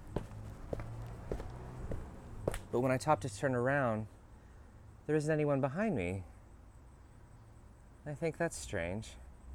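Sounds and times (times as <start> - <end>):
footsteps on hard pavement: 0.0 - 2.8
speech: 2.7 - 4.2, 5.1 - 6.3, 8.0 - 9.2.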